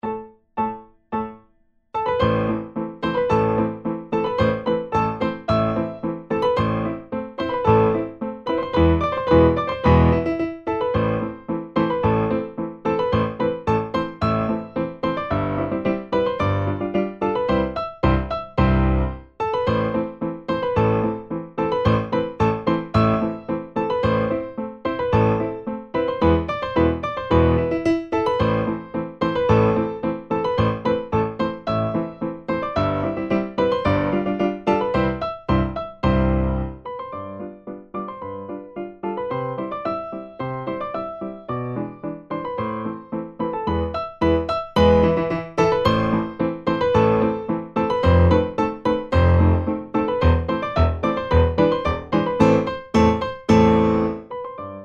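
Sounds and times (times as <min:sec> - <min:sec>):
piano four-hands exercise pieces playback: 0:00.0 - 0:54.8.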